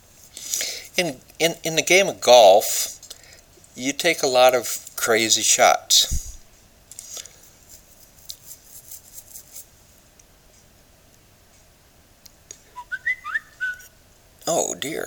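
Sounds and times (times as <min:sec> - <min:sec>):
speech: 0:01.0 - 0:02.9, 0:03.8 - 0:06.2, 0:14.8 - 0:15.0
person whistling short bright notes: 0:12.7 - 0:13.9.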